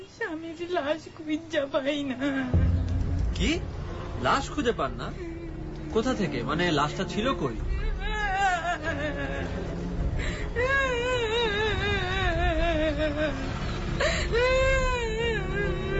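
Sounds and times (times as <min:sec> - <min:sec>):
speech: 0:00.3 - 0:02.7, 0:03.4 - 0:05.3, 0:05.9 - 0:08.1, 0:13.0 - 0:14.8
woman sobbing and wailing: 0:07.6 - 0:15.9.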